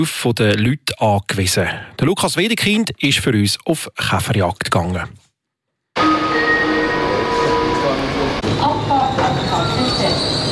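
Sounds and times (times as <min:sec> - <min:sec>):
speech: 0:00.0 - 0:05.2
passenger train brake and wheel squeals: 0:06.0 - 0:10.5.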